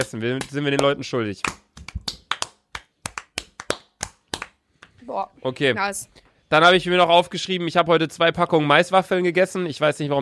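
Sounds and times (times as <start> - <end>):
speech: 0.0 - 1.6, 5.2 - 10.1
sharp hand claps: 0.0 - 5.0.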